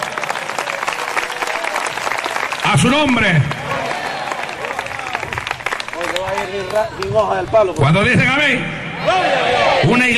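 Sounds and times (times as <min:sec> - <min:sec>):
audience applauding loudly: 0:00.0 - 0:07.2
speech: 0:02.7 - 0:03.6, 0:06.2 - 0:10.1.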